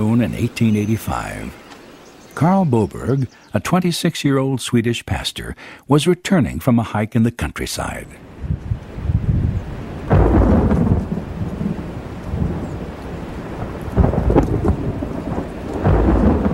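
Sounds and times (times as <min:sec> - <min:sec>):
speech: 0:00.0 - 0:01.6, 0:02.4 - 0:08.3
heavy rain pouring: 0:00.0 - 0:03.3, 0:08.2 - 0:16.5
deep rolls of thunder rumbling: 0:08.3 - 0:16.5.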